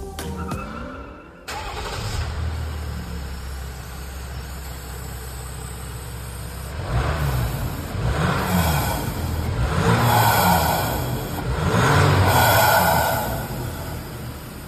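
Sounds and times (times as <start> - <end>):
Jeep Gladiator engine starting, idling and revving: 1.5 - 14.6.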